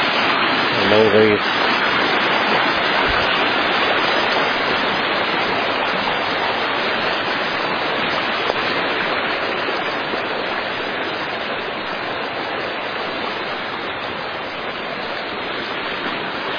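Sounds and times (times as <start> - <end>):
creek roaring with rushing water: 0.0 - 16.5
speech: 0.9 - 1.7.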